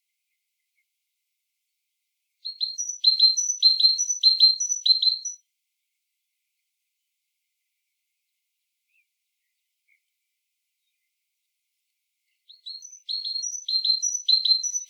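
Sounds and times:
great tit Parus major singing: 0:02.4 - 0:05.4, 0:12.5 - 0:14.8.

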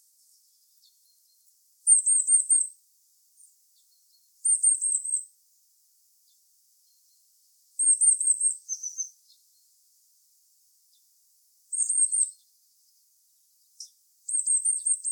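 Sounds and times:
Eurasian blue tit Cyanistes caeruleus trilled calls: 0:01.9 - 0:02.7, 0:04.4 - 0:05.2, 0:07.8 - 0:09.4, 0:11.7 - 0:12.4, 0:13.8 - 0:15.1.

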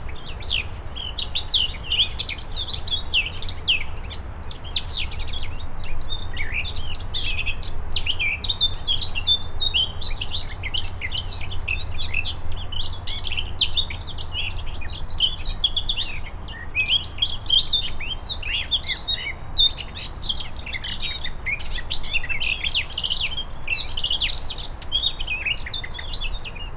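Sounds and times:
Eurasian blackcap Sylvia atricapilla song: 0:00.0 - 0:26.7
low background hiss: 0:00.0 - 0:26.7.

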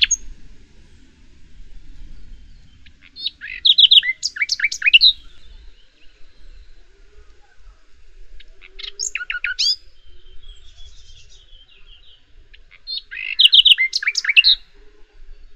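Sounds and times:
common nightingale Luscinia megarhynchos singing: 0:00.0 - 0:15.5.

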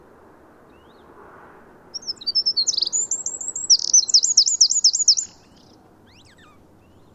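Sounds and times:
steady low hiss: 0:00.0 - 0:07.1
Eurasian wren high rapid song of twittering notes and trills: 0:01.9 - 0:07.0.

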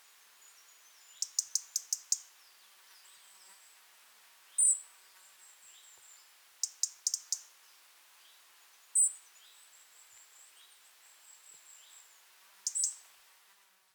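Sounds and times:
quiet hiss: 0:00.0 - 0:13.9
European robin Erithacus rubecula ticking calls: 0:01.1 - 0:02.3, 0:06.6 - 0:07.5, 0:12.6 - 0:13.0.

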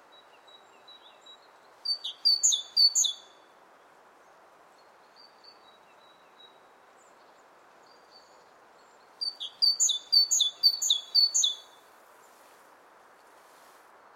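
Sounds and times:
great tit singing: 0:00.5 - 0:03.2, 0:07.9 - 0:11.8.

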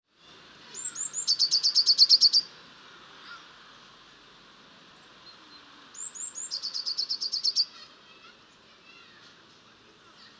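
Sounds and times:
faint background hiss: 0:00.1 - 0:10.3
Eurasian blue tit Cyanistes caeruleus singing: 0:00.7 - 0:02.5, 0:06.0 - 0:07.7.

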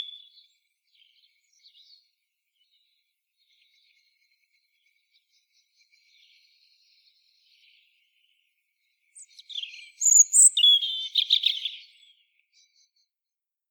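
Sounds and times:
European robin twittering: 0:00.0 - 0:00.3, 0:09.5 - 0:11.9.

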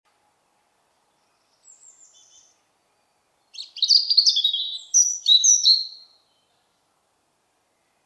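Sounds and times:
European robin Erithacus rubecula singing: 0:01.0 - 0:06.9.

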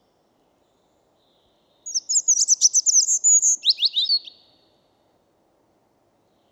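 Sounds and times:
European robin Erithacus rubecula singing: 0:01.8 - 0:04.6.

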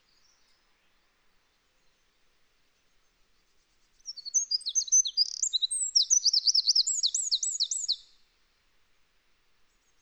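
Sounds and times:
Eurasian wren Troglodytes troglodytes singing: 0:04.1 - 0:08.0.

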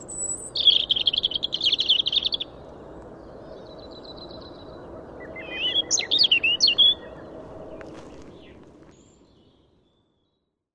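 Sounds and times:
European robin singing: 0:00.0 - 0:02.6, 0:05.2 - 0:09.6.

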